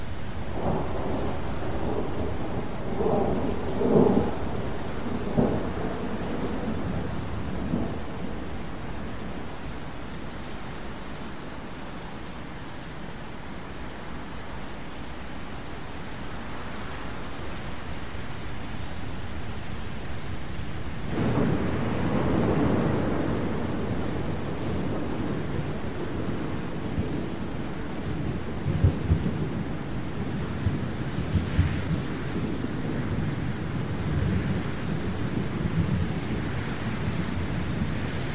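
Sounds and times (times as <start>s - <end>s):
steady rain: 0.0s - 38.3s
rolling thunder: 0.5s - 9.6s, 21.1s - 38.3s.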